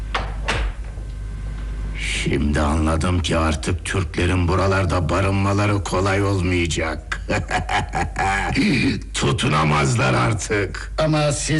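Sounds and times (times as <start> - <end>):
door being shut: 0.1 - 1.0
speech: 2.2 - 11.5
laughter: 7.1 - 9.0.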